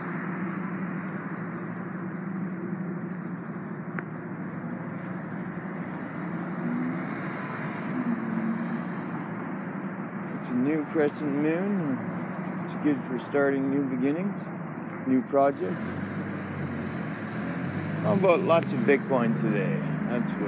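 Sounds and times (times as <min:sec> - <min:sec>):
cherry red Chevrolet car engine revving across the street: 0:00.2 - 0:09.8, 0:15.3 - 0:20.4
speech: 0:10.5 - 0:12.1, 0:12.7 - 0:16.2, 0:18.0 - 0:20.4.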